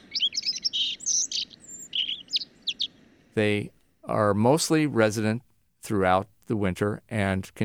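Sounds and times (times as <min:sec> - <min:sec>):
bird singing a varied song of chirps and trills: 0:00.0 - 0:03.1
speech: 0:03.4 - 0:07.6.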